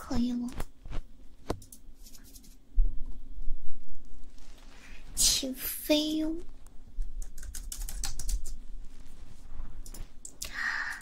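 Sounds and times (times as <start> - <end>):
speech: 0.1 - 0.6, 5.4 - 6.5
rapid typing on a computer keyboard: 7.0 - 8.6, 9.8 - 10.9.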